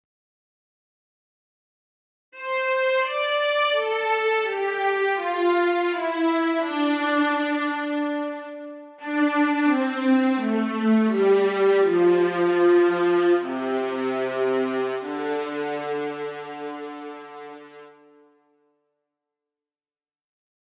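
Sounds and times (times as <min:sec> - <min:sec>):
violas playing legato: 0:02.4 - 0:18.1.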